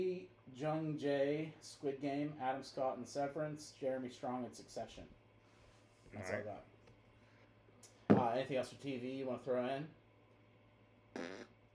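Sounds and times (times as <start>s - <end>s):
speech: 0.0s - 5.2s, 6.1s - 6.7s, 8.2s - 10.0s, 11.2s - 11.5s
quiet hum: 0.0s - 11.7s
raspberry blown with the lips: 11.2s - 11.6s.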